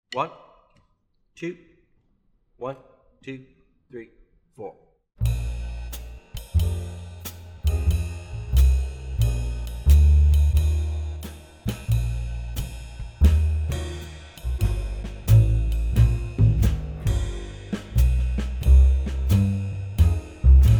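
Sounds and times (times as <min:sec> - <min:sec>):
muted swing piano: 0:05.2 - 0:20.7.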